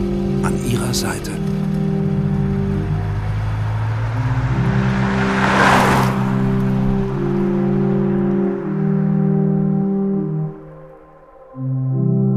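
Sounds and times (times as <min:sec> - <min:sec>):
car engine humming as the car drives along: 0:00.0 - 0:12.2
speech: 0:00.4 - 0:01.7
vehicle rushing past: 0:00.8 - 0:10.7.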